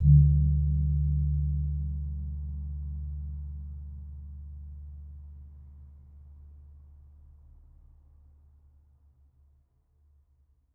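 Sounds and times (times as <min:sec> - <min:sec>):
suwukan gamelan gong: 0:00.0 - 0:04.4.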